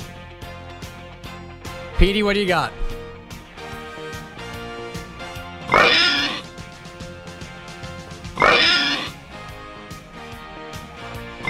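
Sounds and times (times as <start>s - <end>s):
speech: 2.0s - 2.8s
squealing pig oink sound effects from an oink machine: 5.7s - 6.5s, 8.4s - 9.2s.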